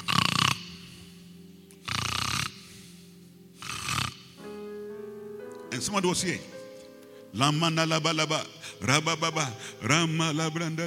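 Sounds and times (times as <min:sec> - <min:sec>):
person snoring: 0:00.0 - 0:00.8, 0:01.8 - 0:02.9, 0:03.6 - 0:04.3
speech: 0:05.8 - 0:06.6, 0:07.3 - 0:10.8.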